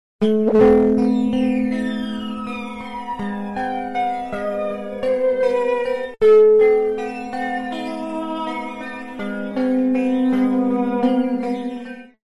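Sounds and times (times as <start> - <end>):
guitar with stereo tube saw flanger effect: 0.3 - 12.1.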